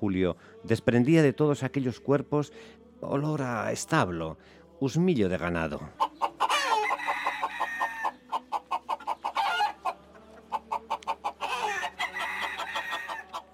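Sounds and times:
speech: 0.0s - 6.0s
hens clucking: 5.6s - 13.5s
roosters crowing: 6.0s - 13.5s.

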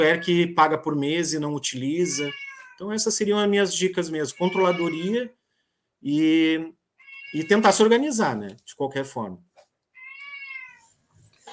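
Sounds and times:
speech: 0.0s - 5.4s, 6.0s - 9.5s
cat meowing: 1.9s - 2.8s, 4.2s - 5.2s, 7.0s - 7.8s, 9.9s - 11.0s
soft rustle: 10.6s - 11.5s.

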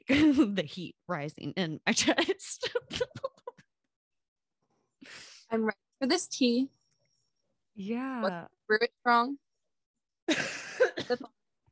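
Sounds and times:
speech: 0.1s - 3.2s, 5.0s - 6.8s, 7.8s - 9.4s, 10.3s - 11.4s
coughing caused by smoking weed: 10.3s - 11.4s.

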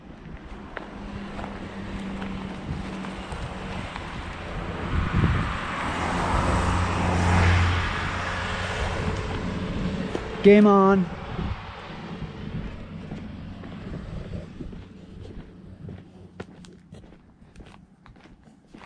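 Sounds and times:
wind blowing: 0.0s - 17.7s
car driving past on road: 0.2s - 17.8s
speech: 10.4s - 11.2s.

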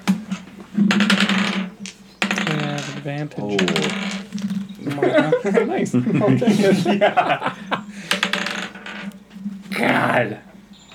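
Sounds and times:
dice clattering across a hard surface: 0.9s - 4.9s, 8.1s - 9.2s
speech: 3.0s - 7.6s, 10.0s - 10.5s
laughter: 4.8s - 8.1s.

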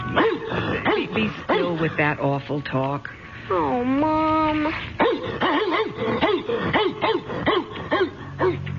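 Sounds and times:
dog barking in sharp yaps: 0.1s - 1.8s, 5.0s - 8.6s
speech: 1.2s - 6.9s.

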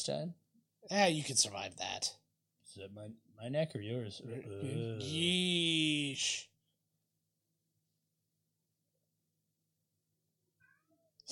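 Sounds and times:
speech: 0.0s - 6.5s
domestic cat meowing: 10.6s - 11.1s.

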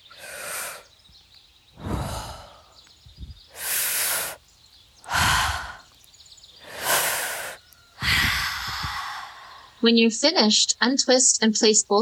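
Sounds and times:
slow deep breaths in a calming breathing exercise: 0.0s - 1.1s, 1.7s - 4.4s, 5.0s - 9.8s
speech: 9.8s - 12.0s.

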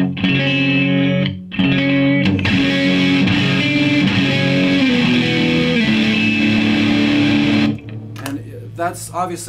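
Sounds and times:
electric guitar strumming chords through a distortion pedal: 0.0s - 8.5s
speech: 8.9s - 9.4s.

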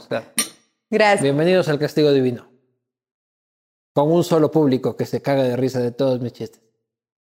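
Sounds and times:
speech: 0.0s - 2.5s, 4.0s - 6.6s
glasses clinking in a toast: 0.4s - 0.7s.

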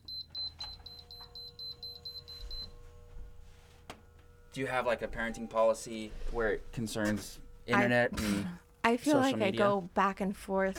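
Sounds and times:
space heater beeping when switched on: 0.0s - 3.3s, 4.1s - 8.5s
low hum: 0.0s - 10.7s
speech: 4.6s - 10.7s.

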